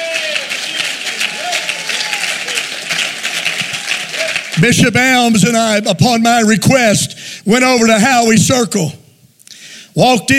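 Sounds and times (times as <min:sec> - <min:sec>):
large church audience clapping: 0:00.0 - 0:05.8
speech: 0:04.6 - 0:09.0, 0:10.0 - 0:10.3.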